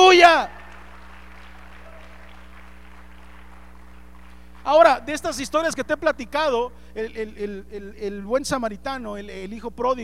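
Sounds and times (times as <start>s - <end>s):
audience clapping: 0.0s - 5.7s
low constant hum: 0.0s - 10.0s
speech: 4.7s - 10.0s.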